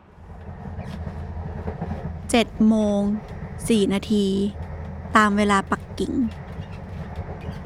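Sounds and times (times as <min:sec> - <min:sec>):
train rumbling pulling out of the station: 0:00.4 - 0:06.3
speech: 0:02.3 - 0:06.4.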